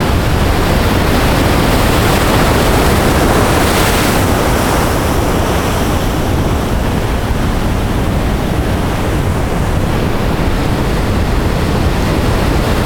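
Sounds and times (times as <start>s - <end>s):
waves: 0.0s - 12.8s.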